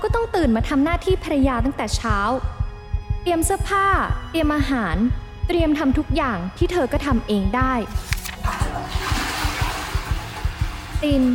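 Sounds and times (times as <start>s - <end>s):
speech: 0.0s - 2.6s, 3.2s - 8.2s, 11.0s - 11.3s
steady low thumping beat: 0.0s - 11.3s
toilet flushing: 8.3s - 11.0s.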